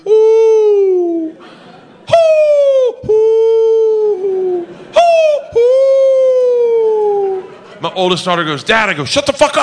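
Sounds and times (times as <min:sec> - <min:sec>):
person's voice imitating an owl hooting by a lake: 0:00.0 - 0:01.4, 0:02.1 - 0:07.4
laughter: 0:00.6 - 0:08.4
breaths: 0:01.3 - 0:02.0
speech: 0:08.0 - 0:09.6.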